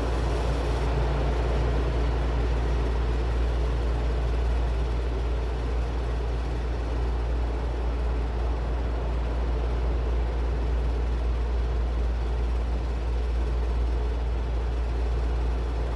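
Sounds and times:
steady broadband white noise with low rumble: 0.0 - 15.9.

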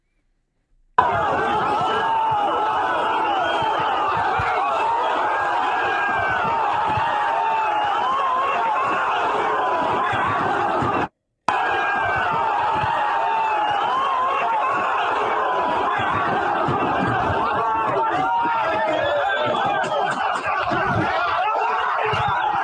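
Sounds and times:
large crowd yelling and screaming while trying to flip cars: 1.0 - 22.6
laughter: 1.0 - 22.6.

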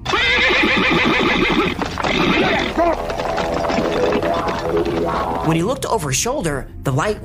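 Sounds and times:
horse neighing: 0.0 - 5.5
speech: 4.6 - 7.2.

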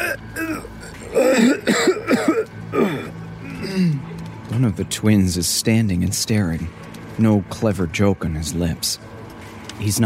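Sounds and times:
strained choked cough from a person trying to scream: 0.0 - 4.0
speech: 4.6 - 9.2, 9.8 - 10.0.

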